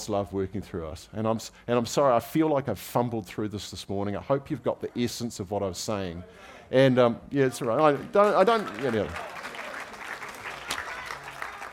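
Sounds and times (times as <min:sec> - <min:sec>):
speech: 0:00.0 - 0:09.4
audience clapping: 0:07.5 - 0:11.7.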